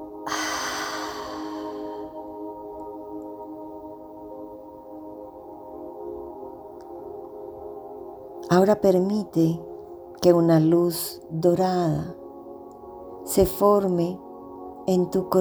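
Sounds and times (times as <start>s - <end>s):
low sustained tonal drone: 0.0s - 2.3s
deep breath in during a guided meditation: 0.3s - 2.2s
speech: 8.5s - 12.2s, 13.3s - 14.2s, 14.9s - 15.3s.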